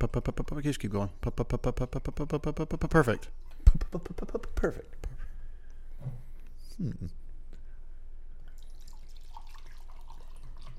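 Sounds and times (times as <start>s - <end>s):
speech: 0.0s - 5.1s, 6.0s - 6.2s, 6.8s - 7.2s
liquor glugging from a bottle into a cup: 8.5s - 10.7s.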